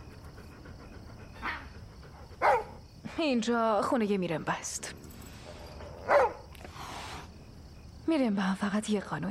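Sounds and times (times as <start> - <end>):
stray dog barking: 2.4 - 2.8, 6.0 - 6.5
speech: 3.2 - 5.0, 8.1 - 9.2.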